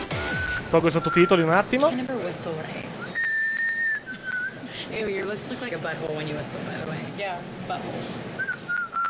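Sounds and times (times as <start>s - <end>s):
people whistling in a whistling contest in England: 0.1s - 1.5s, 3.0s - 4.7s, 8.4s - 9.0s
speech: 0.7s - 3.0s, 5.0s - 8.4s.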